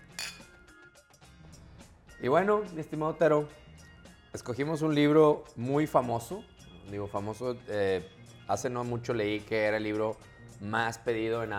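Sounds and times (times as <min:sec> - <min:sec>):
beer glasses clinking in a toast: 0:00.0 - 0:00.6
speech: 0:02.2 - 0:03.6, 0:04.4 - 0:11.5.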